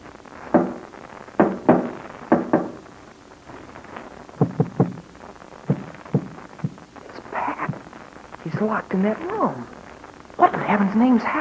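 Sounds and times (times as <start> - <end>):
knocking on a wall tapping out a dot-and-dash code: 0.6 - 0.8, 1.4 - 2.8, 4.4 - 5.0, 5.7 - 6.8
speech: 8.6 - 9.7, 10.7 - 11.4.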